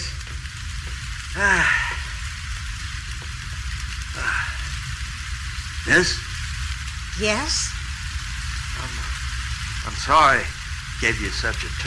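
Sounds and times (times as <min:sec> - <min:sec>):
heavy rain pouring: 0:00.0 - 0:11.8
speech: 0:01.4 - 0:01.9, 0:05.9 - 0:06.3, 0:07.2 - 0:07.8, 0:09.8 - 0:11.8
voice-like sighs or murmurs: 0:01.4 - 0:02.3, 0:04.1 - 0:04.9.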